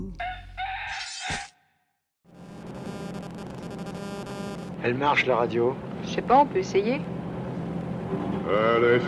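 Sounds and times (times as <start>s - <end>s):
rooster crowing: 0.2s - 1.2s
noisy static-like sound: 2.3s - 6.4s
speech: 4.8s - 7.2s, 8.1s - 9.0s.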